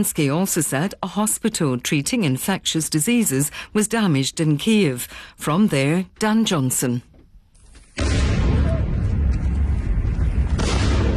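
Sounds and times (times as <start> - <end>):
speech: 0.0 - 7.1
explosions during a night-time air attack on Kyiv: 8.0 - 11.1.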